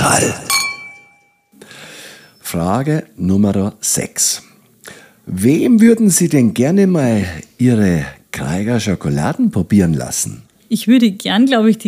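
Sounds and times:
speech: 0:00.0 - 0:00.5, 0:02.5 - 0:11.8
glasses clinking in a toast: 0:00.0 - 0:01.5
soft wash of noise: 0:00.0 - 0:11.8.

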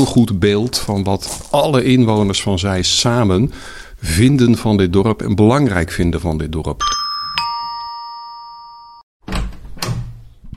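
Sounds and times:
speech: 0:00.0 - 0:07.0
doorbell chiming: 0:06.8 - 0:09.1
door thud and rattling: 0:09.2 - 0:10.5.

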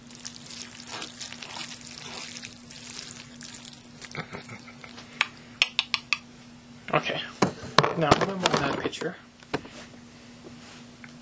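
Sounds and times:
utensil stirring food in a dish: 0:00.0 - 0:05.0
speech: 0:06.9 - 0:07.4, 0:08.0 - 0:09.3.

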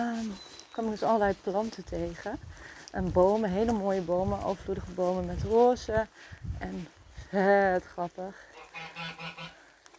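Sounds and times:
speech: 0:00.0 - 0:09.2
goose honking: 0:08.6 - 0:09.6.

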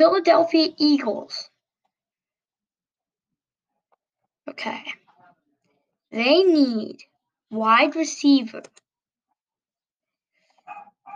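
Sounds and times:
speech: 0:00.0 - 0:01.5, 0:04.5 - 0:05.0, 0:06.1 - 0:08.8
dog barking downstairs: 0:10.6 - 0:11.1.

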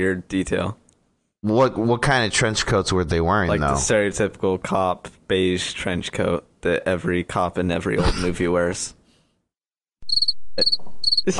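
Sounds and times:
speech: 0:00.0 - 0:00.8, 0:01.4 - 0:09.0, 0:10.2 - 0:11.3
cricket chirping: 0:10.0 - 0:11.3.

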